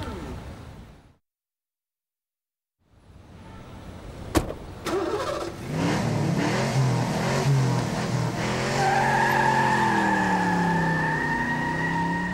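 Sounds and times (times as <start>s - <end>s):
car door slamming: 4.3s - 4.9s
car engine starting and revving hard with rising whining pitch: 5.0s - 12.3s.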